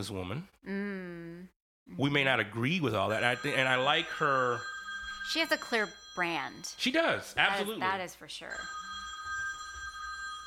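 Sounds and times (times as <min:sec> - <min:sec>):
speech: 0:00.0 - 0:04.7, 0:05.3 - 0:08.8
telephone ringing with electronic tone: 0:02.9 - 0:10.4.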